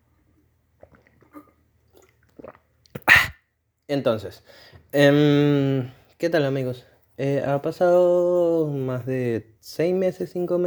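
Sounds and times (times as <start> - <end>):
person sipping and swallowing water: 0.7 - 3.4
speech: 3.9 - 10.6.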